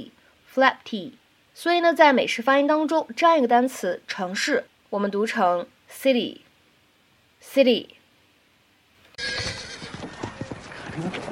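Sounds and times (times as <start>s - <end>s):
speech: 0.0s - 6.4s, 7.4s - 8.0s
horse hooves clip-clopping: 9.2s - 11.2s
horse whinnying: 9.2s - 11.2s.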